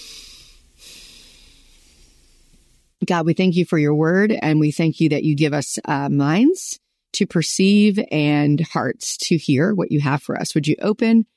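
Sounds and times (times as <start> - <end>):
deep breath taken before a prayer: 0.0 - 2.7
speech: 3.0 - 11.3.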